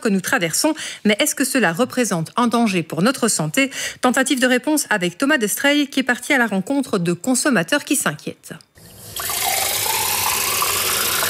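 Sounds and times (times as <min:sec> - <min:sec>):
speech: 0:00.0 - 0:09.3
water pouring from a kitchen tap: 0:08.8 - 0:11.2.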